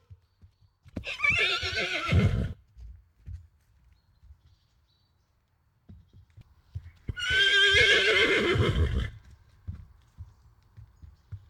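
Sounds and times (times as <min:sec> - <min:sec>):
horse whinnying: 0:01.0 - 0:02.6, 0:07.1 - 0:09.2.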